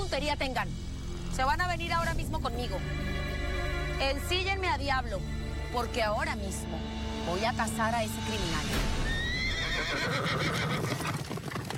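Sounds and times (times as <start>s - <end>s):
speech: 0.1s - 3.2s, 4.0s - 9.0s, 9.8s - 11.2s
horse whinnying: 9.1s - 11.3s
horse hooves clopping: 9.7s - 11.7s.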